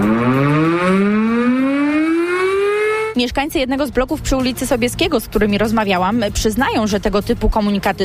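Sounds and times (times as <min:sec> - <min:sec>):
civil defense alarm siren winding up: 0:00.0 - 0:03.2
speech: 0:03.2 - 0:08.0.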